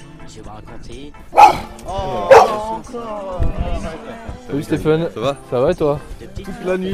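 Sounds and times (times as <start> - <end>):
speech: 0.3 - 6.9
police dog barking: 1.3 - 2.7
voices murmuring: 1.3 - 6.9.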